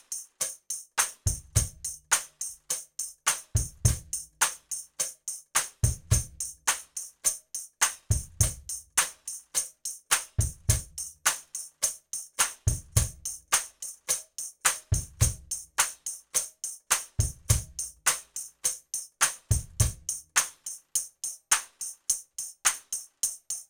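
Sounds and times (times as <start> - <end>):
drum kit playing rhythms: 1.0 - 2.5, 3.3 - 4.8, 5.6 - 7.1, 7.8 - 9.4, 10.1 - 16.2, 16.9 - 18.6, 19.2 - 23.1.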